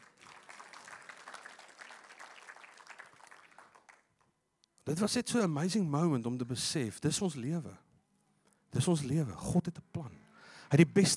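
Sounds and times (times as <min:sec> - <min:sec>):
crowd applauding: 0:00.0 - 0:04.2
speech: 0:04.9 - 0:07.8, 0:08.8 - 0:09.8, 0:10.7 - 0:11.1.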